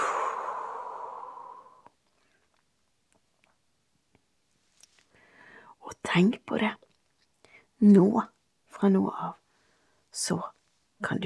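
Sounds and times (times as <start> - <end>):
long slow breathy breath out after a held breath: 0.0 - 2.4, 5.1 - 5.8
speech: 6.1 - 6.8, 7.8 - 9.4, 10.2 - 11.2.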